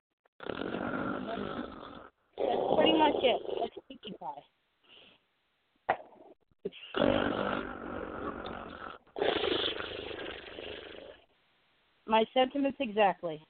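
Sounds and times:
person performing rasping snores as a sound effect: 0:00.4 - 0:03.8, 0:06.7 - 0:11.2
speech: 0:03.0 - 0:04.6, 0:06.6 - 0:07.8, 0:12.1 - 0:13.4.

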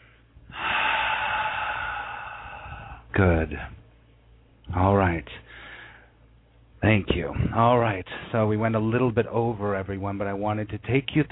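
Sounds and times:
deep breath during a guided meditation: 0:00.0 - 0:03.1, 0:05.4 - 0:06.2
speech: 0:03.1 - 0:03.8, 0:04.7 - 0:05.5, 0:06.8 - 0:11.2.

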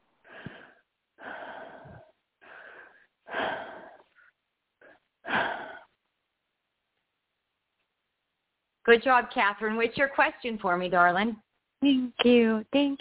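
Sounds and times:
slow deep breaths: 0:00.0 - 0:06.1
speech: 0:08.9 - 0:12.9.

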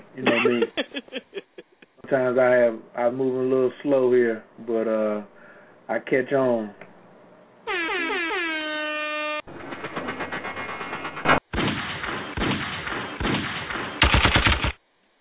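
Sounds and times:
speech: 0:00.2 - 0:00.9, 0:02.1 - 0:06.8
laughter: 0:00.2 - 0:01.9
blaring pitch-bending horn blast: 0:07.7 - 0:09.5
gunshot sound effects in rapid fire: 0:09.5 - 0:14.8.

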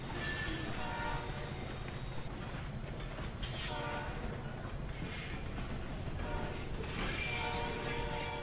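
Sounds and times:
train running on rails: 0:00.0 - 0:08.4.

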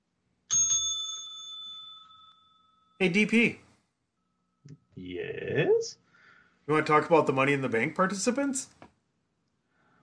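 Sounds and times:
bell rung to start a tag team wrestling title match: 0:00.5 - 0:03.2
speech: 0:03.0 - 0:03.6, 0:05.1 - 0:06.0, 0:06.7 - 0:08.8.

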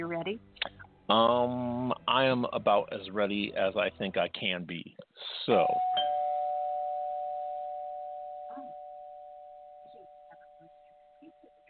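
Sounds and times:
speech: 0:00.0 - 0:05.9
electronic doorbell chime: 0:05.6 - 0:11.6.

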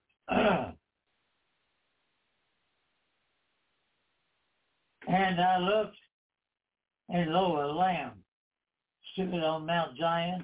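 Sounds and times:
person clearing throat before reading a Bible verse: 0:00.3 - 0:00.8
speech: 0:05.1 - 0:06.0, 0:07.1 - 0:08.2, 0:09.2 - 0:10.4.

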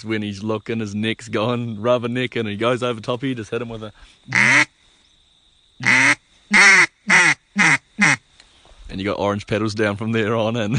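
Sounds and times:
speech: 0:00.0 - 0:04.7, 0:09.0 - 0:10.7
duck call imitating hen mallard quacks: 0:04.3 - 0:04.7, 0:05.8 - 0:08.2.

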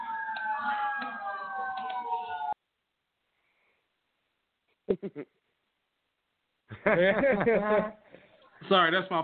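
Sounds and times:
emergency siren wailing on a falling pitch: 0:00.0 - 0:02.6
speech: 0:04.9 - 0:05.5, 0:06.8 - 0:08.0, 0:08.6 - 0:09.2.

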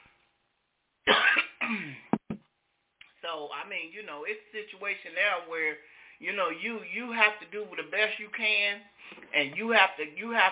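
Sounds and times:
person coughing in harsh rasping bursts and sharp hacks: 0:01.1 - 0:02.2
speech: 0:03.3 - 0:10.4.

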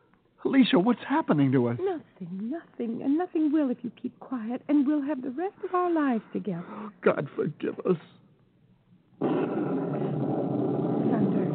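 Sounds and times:
speech: 0:00.4 - 0:08.2
rumbling thunder: 0:09.2 - 0:11.5.

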